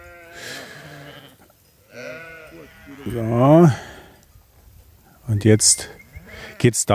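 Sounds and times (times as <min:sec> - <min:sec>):
sheep bleating: 0:00.0 - 0:04.1, 0:06.2 - 0:06.8
speech: 0:02.9 - 0:03.8, 0:05.3 - 0:06.0, 0:06.6 - 0:06.9.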